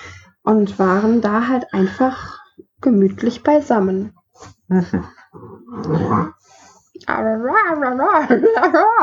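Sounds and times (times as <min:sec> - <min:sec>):
speech: 0:00.5 - 0:09.0
person imitating dog growl: 0:05.4 - 0:06.4.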